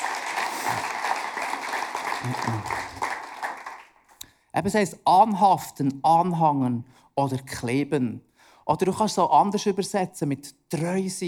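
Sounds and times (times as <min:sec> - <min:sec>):
crowd applause: 0:00.0 - 0:04.0
speech: 0:02.2 - 0:03.0, 0:04.6 - 0:11.2.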